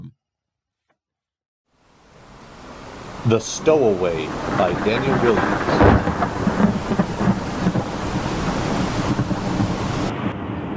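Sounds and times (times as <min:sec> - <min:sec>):
dense rain in a thunderstorm: 0:01.8 - 0:10.7
speech: 0:03.2 - 0:05.9
deep rumbling thunder: 0:03.7 - 0:10.7.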